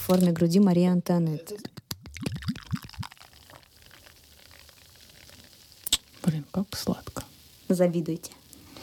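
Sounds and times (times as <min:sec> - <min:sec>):
speech: 0:00.1 - 0:02.3, 0:06.3 - 0:08.4
tonic pouring into a glass: 0:01.9 - 0:06.3
carbonated hiss of tonic: 0:02.1 - 0:08.8.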